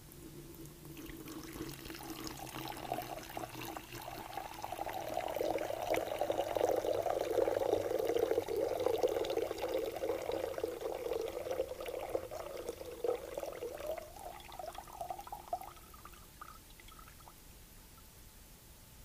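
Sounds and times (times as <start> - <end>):
water poured into a baptismal font: 0.0 - 17.4.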